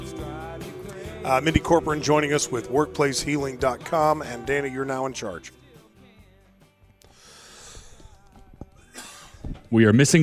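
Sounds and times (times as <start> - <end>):
speech: 1.2 - 5.6, 9.7 - 10.2
wheezy snorting breaths: 7.1 - 8.1
coughing fit: 8.8 - 9.7.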